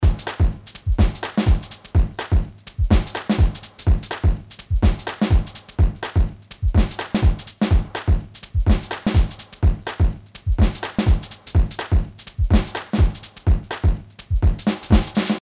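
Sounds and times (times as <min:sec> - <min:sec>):
full drum kit playing at 125: 0:00.0 - 0:15.3.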